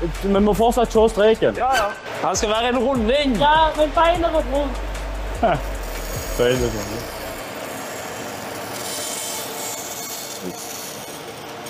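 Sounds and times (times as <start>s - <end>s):
speech: 0.0s - 5.7s, 6.4s - 7.2s
hand saw cutting a circle out of wood: 5.6s - 11.6s.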